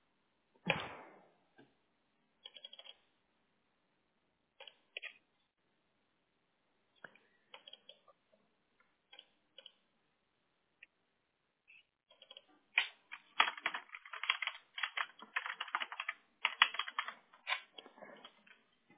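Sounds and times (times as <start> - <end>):
computer keyboard typing to delete text: 2.4 - 3.0, 12.1 - 18.6.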